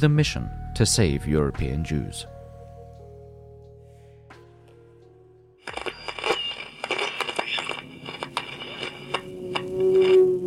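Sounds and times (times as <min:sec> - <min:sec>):
speech: 0:00.0 - 0:02.4
droning engine-like hum: 0:08.4 - 0:10.4
plane roaring down out of control: 0:08.9 - 0:10.4.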